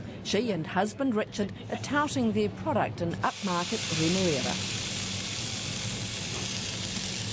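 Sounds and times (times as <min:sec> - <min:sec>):
speech: 0:00.2 - 0:04.8
new season spring lamb searing in a hot pan: 0:03.3 - 0:07.3.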